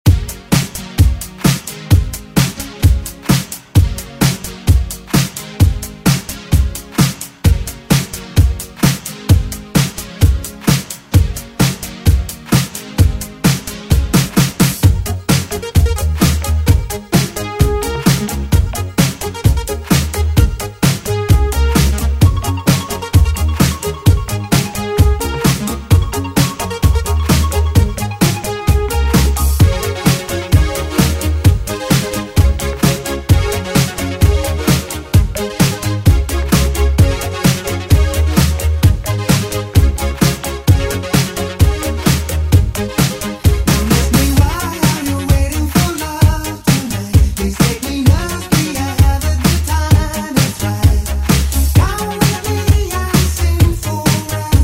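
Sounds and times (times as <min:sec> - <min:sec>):
old school drum beat: 0:00.1 - 0:54.6.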